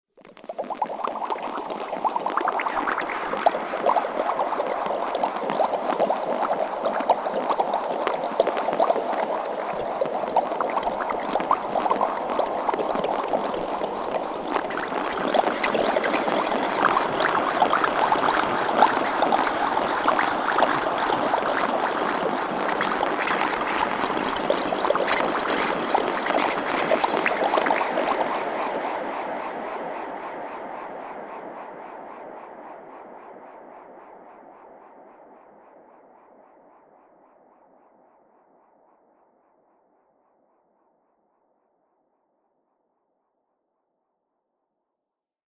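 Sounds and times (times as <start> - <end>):
sound design mouth bubbles with long delay reverb: 0.2 - 30.2.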